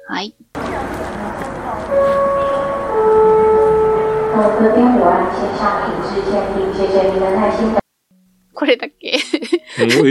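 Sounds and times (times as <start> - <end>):
speech: 0.1 - 1.1, 1.8 - 2.3, 4.4 - 7.8, 8.7 - 10.0
airport announcement chime in Taipei Taiwan: 0.6 - 7.8
murmur of a busy airport crowd: 0.6 - 7.8
laughter: 9.2 - 10.0.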